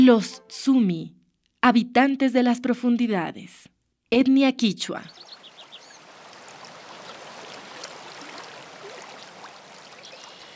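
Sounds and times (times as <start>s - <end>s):
speech: 0.0s - 5.4s
slowly flowing river water forming eddies: 5.1s - 10.5s
faint bird calls chirping: 6.8s - 10.5s.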